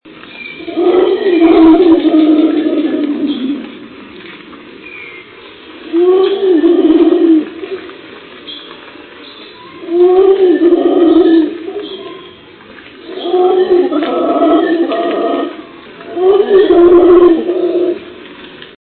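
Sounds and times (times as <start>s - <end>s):
howler monkey calling: 0.6s - 3.8s, 5.9s - 7.9s, 9.7s - 18.1s.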